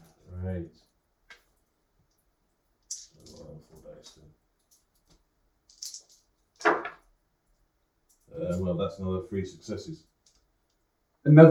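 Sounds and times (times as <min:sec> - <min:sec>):
dice clattering across a surface: 0:05.7 - 0:07.0
speech: 0:08.5 - 0:10.1, 0:11.2 - 0:11.5.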